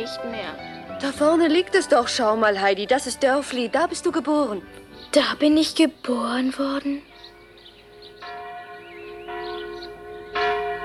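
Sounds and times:
speech: 0.0s - 7.1s
village church bell tolling outdoors: 7.1s - 10.8s.

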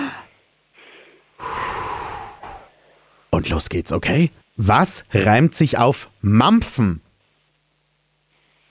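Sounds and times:
deep breath drawn in through the nose and long loud exhale: 0.0s - 3.3s
soft follow-up puff of breath: 0.8s - 3.0s
speech: 3.4s - 7.0s.

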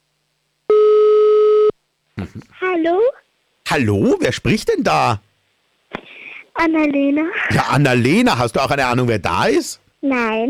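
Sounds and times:
telephone line tone after a number is dialed: 0.7s - 1.7s
speech: 2.2s - 5.3s, 6.6s - 10.4s.

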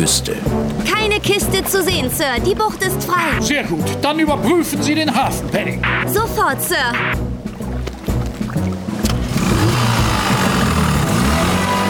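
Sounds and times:
speech: 0.0s - 7.4s
broad wash of water from a moving motorboat: 7.2s - 11.8s
motorboat engine droning while heading toward a harbor: 7.2s - 11.8s.

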